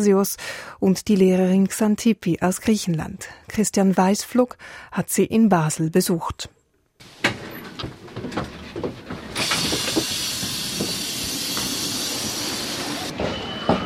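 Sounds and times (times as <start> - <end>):
speech: 0.0 - 6.6
footsteps of people arriving and departing at a railway station: 7.0 - 11.8
suitcases being pulled hurriedly at a railway station: 7.0 - 13.8
loud steady hiss of a train: 9.2 - 13.8.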